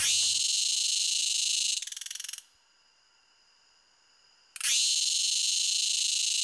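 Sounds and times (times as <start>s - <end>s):
Dundubia terpsichore cicada song: 0.0s - 6.4s.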